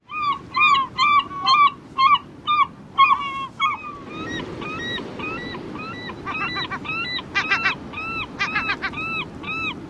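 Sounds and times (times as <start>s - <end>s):
Glaucous-winged Gull calls: 0.1s - 9.8s.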